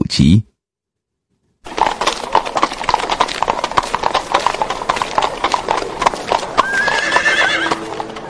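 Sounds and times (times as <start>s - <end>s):
speech: 0.2s - 0.5s
clip-clop hoofbeats of a horse-drawn carriage: 1.6s - 8.2s
horse whinnying: 6.2s - 8.2s.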